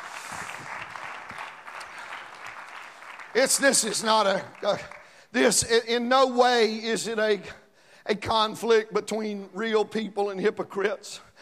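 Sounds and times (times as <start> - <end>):
audience clapping hands: 0.0 - 5.6
speech: 3.4 - 11.3.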